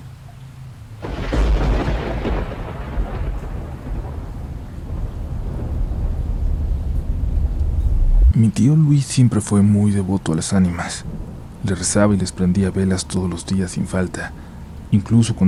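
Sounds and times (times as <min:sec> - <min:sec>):
heavy rain: 0:00.0 - 0:15.4
rolling thunder during a storm: 0:01.0 - 0:08.4, 0:10.8 - 0:13.5
speech: 0:08.4 - 0:15.4.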